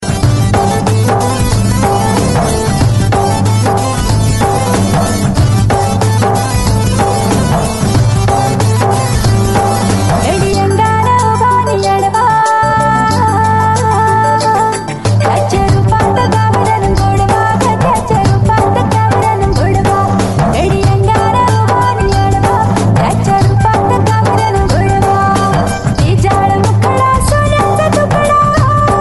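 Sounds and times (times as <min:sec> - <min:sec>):
Marathi tone: 0:00.0 - 0:29.0.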